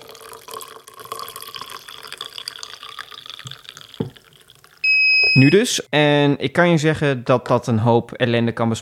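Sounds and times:
water pouring into a cup: 0:00.0 - 0:04.9
liquid indicator electronic beep: 0:04.8 - 0:05.7
speech: 0:05.4 - 0:08.8.

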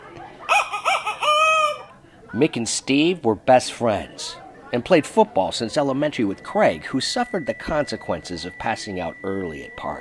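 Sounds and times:
rooster crowing: 0:00.5 - 0:02.0
speech: 0:02.3 - 0:09.9.

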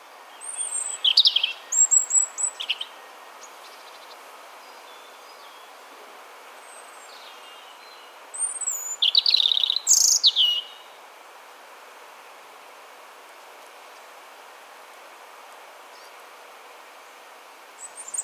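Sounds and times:
European robin autumn song of thin high whistled phrases and trills: 0:00.3 - 0:05.7, 0:06.7 - 0:10.9, 0:17.8 - 0:18.2.

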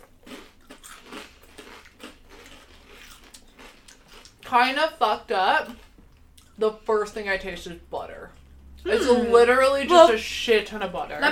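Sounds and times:
buffalo-flavored potato chips bitten and chewed: 0:00.0 - 0:04.5
speech: 0:04.5 - 0:05.8, 0:06.6 - 0:08.1, 0:08.8 - 0:11.3.

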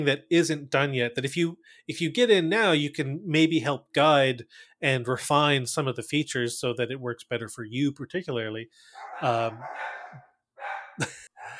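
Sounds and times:
speech: 0:00.0 - 0:10.3, 0:11.0 - 0:11.2
breathy gasp-like noises: 0:01.6 - 0:01.9, 0:04.5 - 0:04.8, 0:08.7 - 0:10.2, 0:11.2 - 0:11.5
dogs whining and yelping in the background: 0:08.9 - 0:11.5.

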